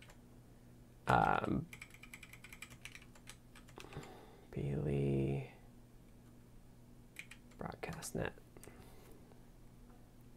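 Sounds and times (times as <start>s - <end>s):
typing on a new computer keyboard: 0.0s - 0.2s, 1.1s - 4.1s, 7.2s - 8.0s
speech: 1.1s - 1.8s, 4.6s - 5.5s, 7.6s - 8.4s.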